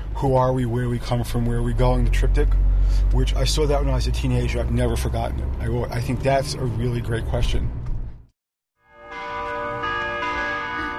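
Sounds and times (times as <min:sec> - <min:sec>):
low rumble: 0:00.0 - 0:08.3
speech: 0:00.2 - 0:07.8
bells ringing in overlapping metallic tones: 0:08.9 - 0:10.9.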